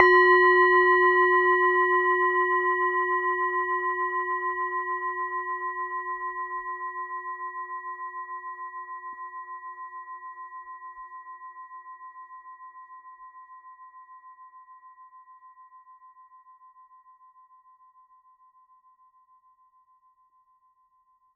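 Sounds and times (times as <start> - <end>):
large Tibetan singing bowl struck: 0.0 - 6.7.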